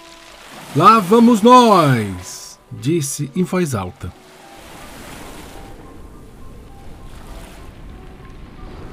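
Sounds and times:
ocean waves washing as a ship sails over large waves: 0.0s - 8.9s
speech: 0.8s - 4.2s.

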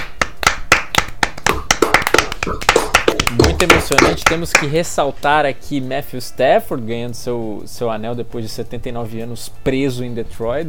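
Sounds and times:
hands clapping: 0.0s - 4.9s
speech: 2.4s - 10.6s.

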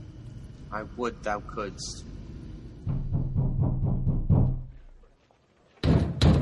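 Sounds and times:
speech: 0.7s - 2.1s
heavy bangs on a wooden door: 2.9s - 4.7s, 5.8s - 6.4s
knocking on a wooden door: 2.9s - 4.7s.

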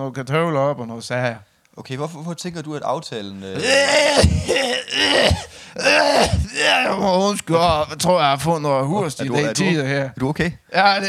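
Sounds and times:
speech: 0.0s - 11.0s
person coughing rough throaty coughs: 3.6s - 7.1s.

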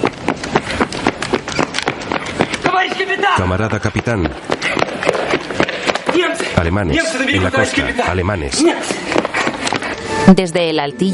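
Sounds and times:
soldier's heavy running footsteps: 0.0s - 10.1s
man calling out: 2.7s - 4.4s, 6.2s - 8.9s
speech: 2.9s - 4.5s, 6.6s - 9.2s, 10.3s - 11.1s.

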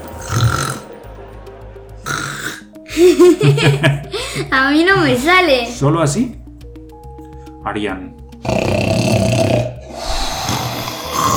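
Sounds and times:
person imitating giants snoring: 0.1s - 0.9s, 2.0s - 2.7s, 8.4s - 11.3s
person laughing: 2.9s - 4.6s
speech: 3.0s - 6.4s, 7.6s - 8.2s.

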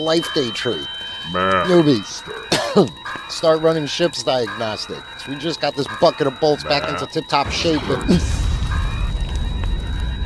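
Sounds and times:
speech: 0.0s - 8.4s
crackling bursts: 0.2s - 10.2s
loud deep explosion sound effect rumbling: 7.4s - 10.2s.

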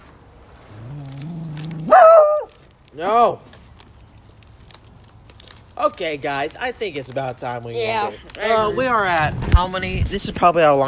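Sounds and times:
person imitating dog growling: 0.8s - 2.5s
person imitating dog with high-pitched yelping bark: 1.7s - 2.6s
speech: 3.0s - 3.5s, 5.8s - 10.8s.

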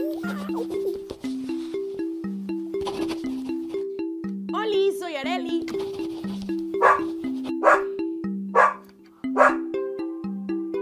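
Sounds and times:
bouncy melody: 0.0s - 10.7s
dog barking: 6.8s - 7.9s, 8.6s - 8.8s, 9.4s - 9.7s.

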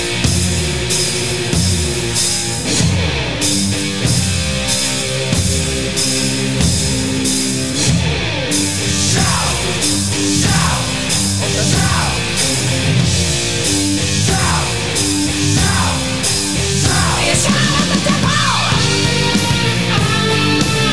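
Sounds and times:
dense distorted guitars: 0.0s - 20.9s
loud 1983 heavy metal song: 0.0s - 20.9s
steady pounding beat: 0.0s - 20.9s
wailing sung vocals: 8.8s - 13.1s, 13.9s - 20.9s.

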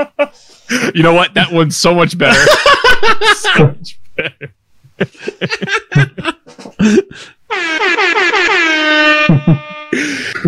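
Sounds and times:
laughter: 0.0s - 0.9s, 2.3s - 7.2s
speech: 0.0s - 8.6s
DJ air horn sound effect blasts: 7.5s - 10.2s.

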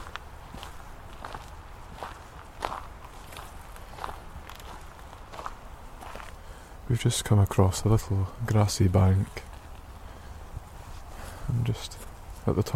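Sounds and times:
woman's footsteps crunching on gravel at a gentle walking pace: 0.0s - 6.4s, 8.9s - 12.5s
speech: 6.9s - 9.5s, 11.7s - 12.7s.

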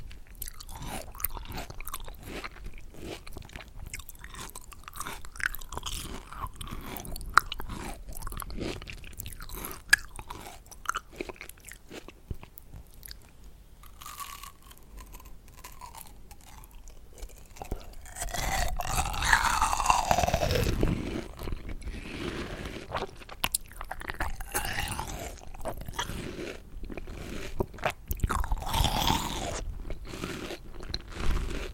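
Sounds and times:
person eating watermelon with wet crunches: 0.0s - 31.7s
slurping: 17.4s - 31.7s.

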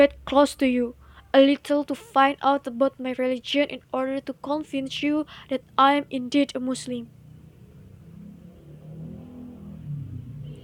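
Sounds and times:
speech: 0.0s - 7.2s
police car engine revving: 7.1s - 10.6s.

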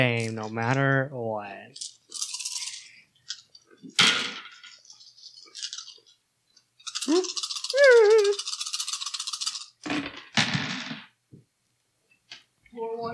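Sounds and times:
speech: 0.0s - 2.0s, 7.1s - 8.4s
dice rattling and clattering: 1.8s - 3.5s, 4.4s - 6.1s, 6.8s - 9.9s
person murmuring and exclaiming: 7.1s - 8.4s
die falling onto the floor: 9.8s - 11.2s.

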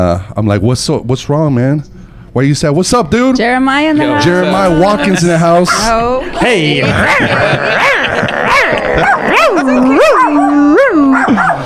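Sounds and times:
speech: 0.0s - 11.5s
laughter: 4.2s - 11.6s
dog howling: 7.0s - 11.6s.

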